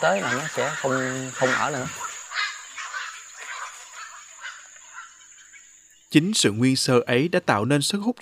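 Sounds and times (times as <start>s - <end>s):
speech: 0.0s - 2.1s, 6.1s - 8.2s
colony of storks and egrets squawking in a bird sanctuary: 0.0s - 5.8s.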